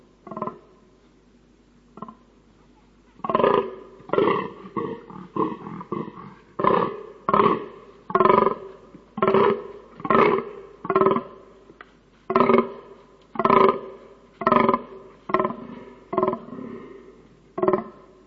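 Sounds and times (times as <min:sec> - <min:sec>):
fallow deer in rut groaning: 0:03.2 - 0:11.6, 0:12.3 - 0:18.2.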